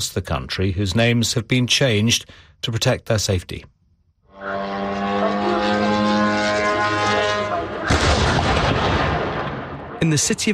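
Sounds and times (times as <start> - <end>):
speech: 0.0 - 3.7, 4.4 - 4.8, 10.0 - 10.5
drone engine buzzing: 4.3 - 8.3
loud crash of drone striking a building: 4.8 - 10.0.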